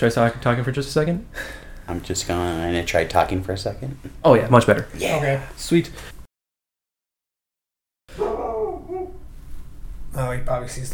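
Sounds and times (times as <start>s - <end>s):
speech: 0.0s - 6.1s, 10.2s - 10.9s
dog barking on a porch: 8.1s - 9.2s.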